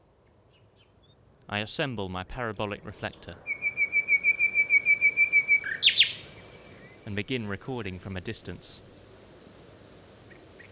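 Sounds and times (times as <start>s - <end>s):
male Common nightingale singing before sunrise: 0.5s - 1.2s, 2.4s - 7.1s
speech: 1.5s - 3.5s, 7.1s - 8.9s.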